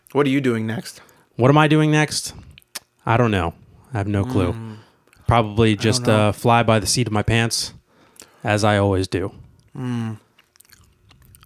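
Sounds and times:
speech: 0.1 - 7.8, 8.4 - 10.2
short hummed vocal sound: 4.1 - 4.9, 5.8 - 6.3, 9.7 - 10.3
wet smacking clicks of someone chewing gum: 9.6 - 11.4.

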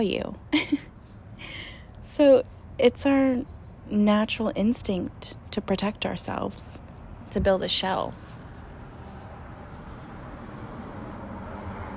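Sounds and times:
speech: 0.0 - 0.7, 2.2 - 8.2
road rumble of a passing car: 8.0 - 11.9.

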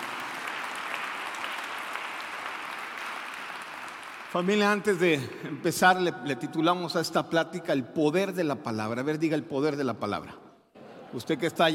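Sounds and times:
audience applauding: 0.0 - 5.8
speech: 4.3 - 10.4, 11.1 - 11.7.

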